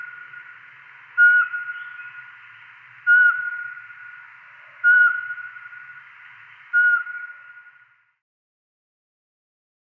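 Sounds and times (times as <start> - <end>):
Eurasian pygmy owl giving whistled notes: 0.0 - 7.9.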